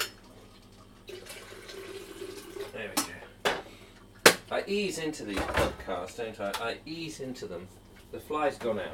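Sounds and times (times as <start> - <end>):
water running from a tap into a kettle for making coffee: 0.0 - 3.0
speech: 4.5 - 8.9.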